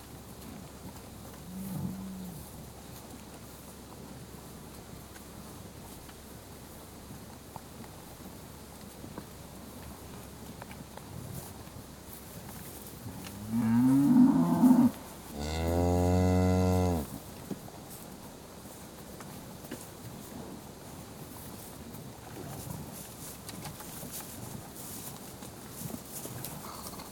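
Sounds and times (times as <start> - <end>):
low rustling and shuffling: 0.0 - 16.1, 16.8 - 27.1
suckling herd cattle mooing while being fed in a field: 13.3 - 17.1.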